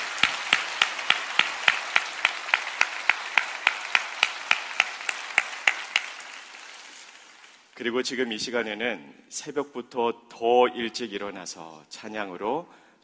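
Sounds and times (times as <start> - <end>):
audience clapping in steady unison: 0.0 - 8.4
speech: 7.8 - 12.8.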